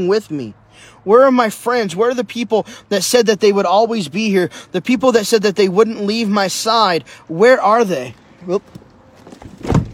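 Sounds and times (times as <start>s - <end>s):
speech: 0.0s - 8.8s
door pushed shut: 9.4s - 9.9s.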